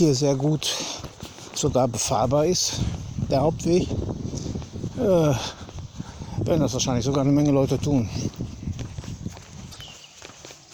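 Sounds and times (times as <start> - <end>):
speech: 0.0 - 4.4, 5.0 - 5.6, 6.4 - 8.4
footsteps on an earth path covered with a thick layer of pine needles: 0.0 - 10.7.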